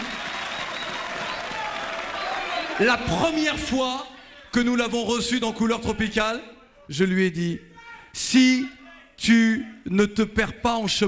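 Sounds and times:
audience applause during a tribute: 0:00.0 - 0:03.4
speech: 0:02.8 - 0:11.0.

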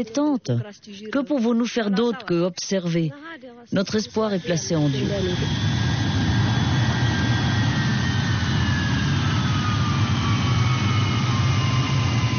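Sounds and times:
speech: 0:00.0 - 0:06.0
C-130 Hercules turboprop transport plane engines roaring: 0:03.8 - 0:12.3.

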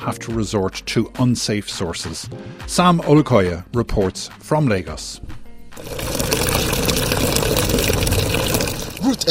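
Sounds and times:
speech: 0:00.0 - 0:06.0
borehole water gushing and splashing into a container: 0:05.8 - 0:09.2
borehole water pump whirring: 0:05.8 - 0:09.2.

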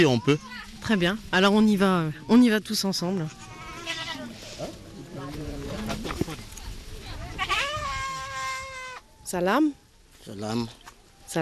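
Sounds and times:
speech: 0:00.0 - 0:03.4, 0:09.3 - 0:11.4
faint noise: 0:00.0 - 0:11.4
goats bleating: 0:03.2 - 0:04.5, 0:07.3 - 0:09.0.

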